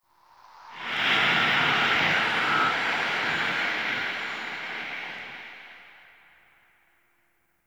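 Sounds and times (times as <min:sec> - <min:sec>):
toxic wind gust: 0:00.4 - 0:06.0.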